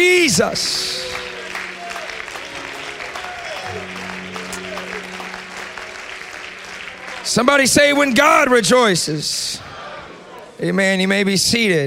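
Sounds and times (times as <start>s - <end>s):
speech: 0.0s - 1.1s, 7.4s - 9.6s, 10.6s - 11.8s
large crowd clapping: 0.0s - 9.0s
sustained organ or keyboard tones: 0.0s - 9.4s.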